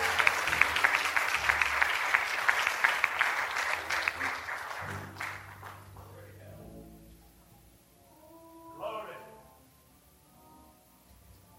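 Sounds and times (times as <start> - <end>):
audience clapping at a Pentecostal church service: 0.0 - 6.5.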